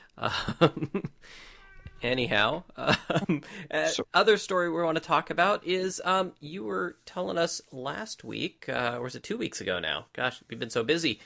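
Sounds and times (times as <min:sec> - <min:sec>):
speech: 0:00.2 - 0:11.2
pet cat meowing: 0:01.5 - 0:02.1.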